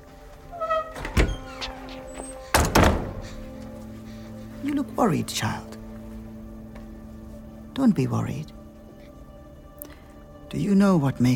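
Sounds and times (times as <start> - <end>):
door creaking and shutting with a heavy knock: 0.4 - 3.7
speech: 4.6 - 5.7, 7.8 - 8.6, 10.5 - 11.3.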